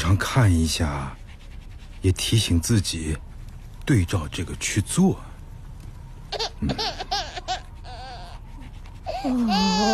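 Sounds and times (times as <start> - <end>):
speech: 0.1 - 1.2, 2.0 - 3.3, 3.9 - 5.3, 6.6 - 7.2, 9.2 - 9.9
baby crying and fussing: 6.3 - 9.9.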